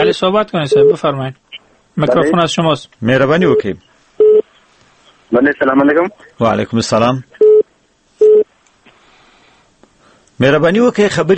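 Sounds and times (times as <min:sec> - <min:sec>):
speech: 0:00.0 - 0:01.4, 0:02.0 - 0:03.9, 0:05.3 - 0:07.4, 0:10.4 - 0:11.3
telephone busy tone after a dropped call: 0:08.2 - 0:08.4.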